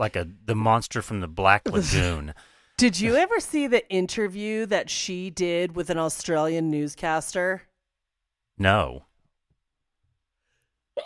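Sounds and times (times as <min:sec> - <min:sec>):
speech: 0:00.0 - 0:07.7, 0:08.6 - 0:09.1
person sneezing: 0:01.6 - 0:02.3.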